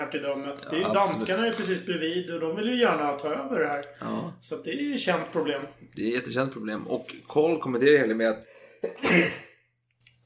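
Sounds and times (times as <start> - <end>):
speech: 0.0 - 9.5
person sneezing: 8.8 - 9.6.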